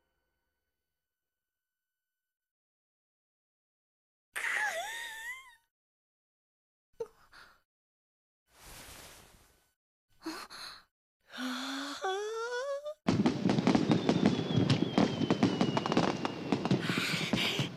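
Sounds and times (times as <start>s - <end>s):
short breathy vocal sounds: 10.2s - 12.9s
fireworks bursting into crackle of rapid pops and bangs: 13.1s - 17.7s
thin whistle: 13.9s - 16.6s.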